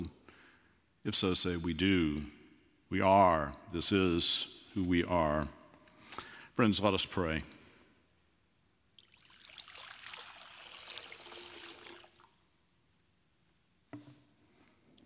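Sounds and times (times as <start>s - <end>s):
speech: 1.0s - 5.6s, 6.2s - 7.6s
water poured into a baptismal font during a church service: 8.9s - 12.4s.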